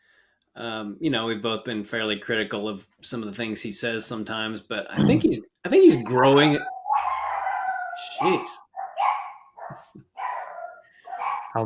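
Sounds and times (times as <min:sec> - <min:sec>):
speech: 0:00.6 - 0:06.7, 0:08.2 - 0:08.6
dogs barking: 0:06.3 - 0:11.6.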